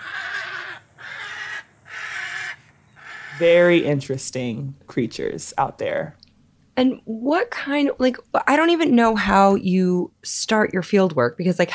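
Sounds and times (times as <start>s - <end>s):
tricolored heron squawking: 0.0s - 3.8s
speech: 3.4s - 6.2s, 6.8s - 11.7s.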